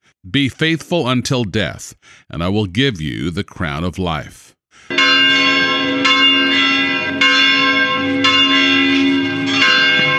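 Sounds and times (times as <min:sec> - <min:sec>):
speech: 0:00.2 - 0:06.7
church bells pealing: 0:04.9 - 0:10.1.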